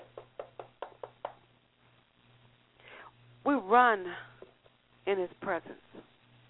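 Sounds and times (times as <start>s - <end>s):
knocking on a door: 0.0s - 1.4s
speech: 3.5s - 4.3s, 5.0s - 6.1s.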